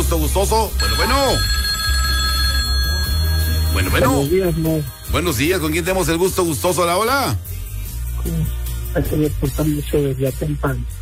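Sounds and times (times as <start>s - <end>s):
speech: 0.0s - 1.6s, 3.8s - 7.5s, 8.2s - 10.9s
telephone ringing for an incoming call: 0.7s - 6.6s.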